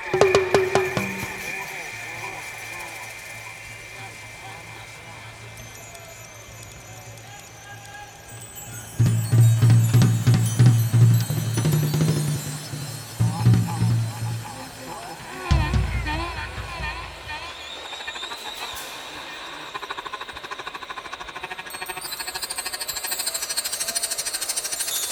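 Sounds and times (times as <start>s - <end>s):
live drums in Charlotte NC: 0.1s - 19.1s
live music in Charlotte NC: 0.2s - 2.3s, 8.2s - 17.6s.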